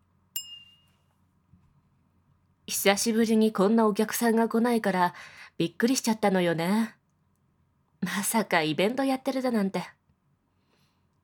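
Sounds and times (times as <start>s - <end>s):
glasses clinking in a toast: 0.4s - 1.0s
speech: 2.7s - 7.0s, 8.0s - 10.0s.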